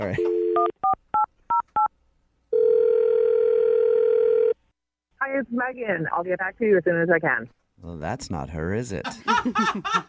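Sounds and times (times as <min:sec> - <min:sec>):
speech: 0:00.0 - 0:01.0, 0:05.4 - 0:10.0
loud steady telephone tone: 0:02.5 - 0:04.6
laughter: 0:09.0 - 0:10.0.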